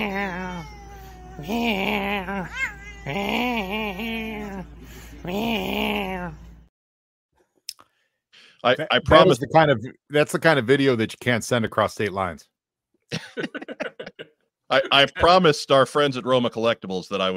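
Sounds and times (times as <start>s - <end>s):
cat meowing in long wavering yowls: 0.0s - 4.5s
speech: 1.4s - 6.4s, 8.6s - 12.5s, 13.1s - 17.3s
laughter: 13.1s - 15.4s.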